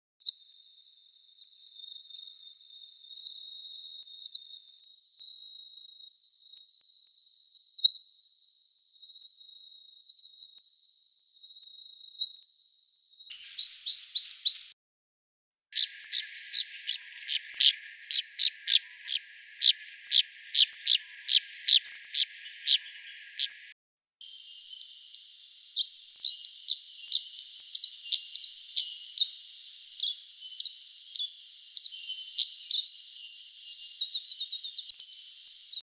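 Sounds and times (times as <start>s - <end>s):
mistletoebird calling in a garden in Canberra: 13.3s - 14.8s, 15.8s - 23.7s, 24.5s - 35.7s.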